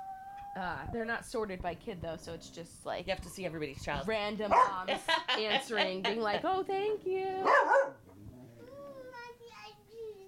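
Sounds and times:
speech: 0:00.6 - 0:08.0
dog barking: 0:04.5 - 0:04.8, 0:07.4 - 0:08.0.

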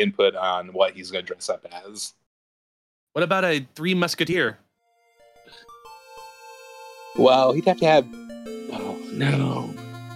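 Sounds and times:
speech: 0:00.0 - 0:02.2, 0:03.1 - 0:04.6, 0:07.2 - 0:09.8
cell phone ringing with melodic electronic ringtone: 0:04.8 - 0:10.1.

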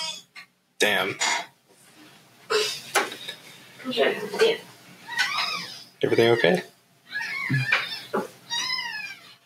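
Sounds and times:
speech: 0:00.8 - 0:01.4, 0:03.8 - 0:04.7, 0:06.0 - 0:06.7, 0:07.5 - 0:08.3
young foster kitten meowing high and thin: 0:07.1 - 0:09.4.

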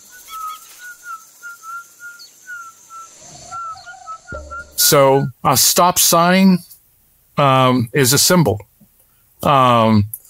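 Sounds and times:
person whistling short clear tones: 0:00.0 - 0:05.0
faint hiss: 0:00.0 - 0:10.2
speech: 0:04.3 - 0:06.7, 0:07.4 - 0:08.7, 0:09.4 - 0:10.2.

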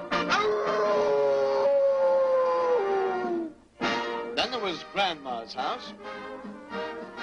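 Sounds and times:
wolf howling: 0:00.2 - 0:03.6
speech: 0:05.1 - 0:06.8.

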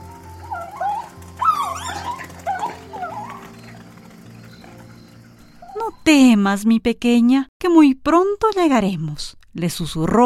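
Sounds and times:
small female wolf cub whimpering in a dense forest: 0:00.4 - 0:06.1
speech: 0:06.1 - 0:10.2.

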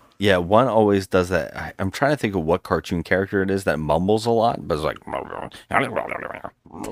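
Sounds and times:
speech: 0:00.2 - 0:06.9
person's voice imitating a dog's grumbling growl: 0:05.1 - 0:06.9.

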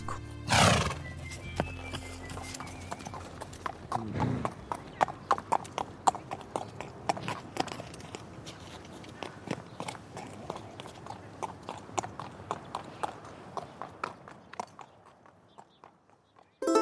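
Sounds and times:
horse hooves clip-clopping during a horseback ride: 0:00.4 - 0:16.6.

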